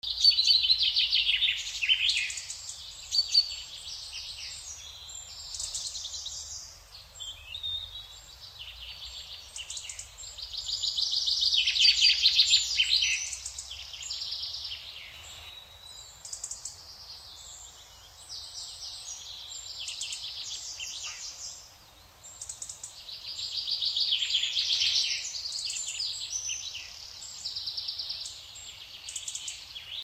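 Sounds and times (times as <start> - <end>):
British birds singing in a forest: 0.0 - 30.0.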